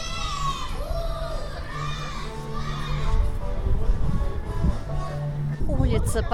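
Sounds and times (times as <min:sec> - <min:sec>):
burst of shouting and commotion: 0:00.0 - 0:03.3
children calling and chattering at an outdoor food festival on Pochtovaya Street: 0:00.0 - 0:06.3
faint music with a sustained low tone: 0:00.0 - 0:06.3
steady hum of outdoor festival crowd: 0:00.0 - 0:06.3
speech: 0:06.0 - 0:06.3.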